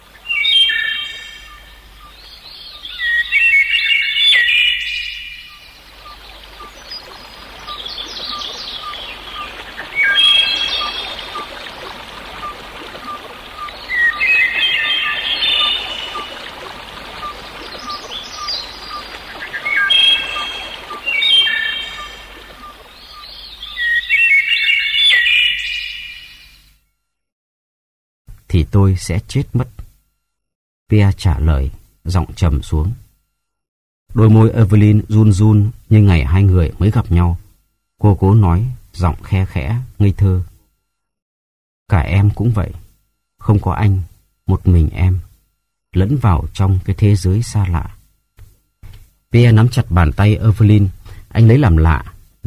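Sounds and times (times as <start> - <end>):
trickling water: 0.0 - 25.4
nightingale singing: 0.0 - 26.7
speech: 28.8 - 29.8, 30.9 - 33.0, 34.1 - 37.4, 38.0 - 40.5, 41.9 - 42.8, 43.4 - 45.3, 46.0 - 48.0, 49.3 - 52.4.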